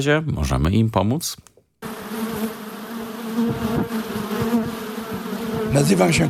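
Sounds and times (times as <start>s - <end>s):
speech: 0.0s - 1.5s, 5.7s - 6.2s
many honeybees buzzing at an apiary of colonies: 1.8s - 6.2s.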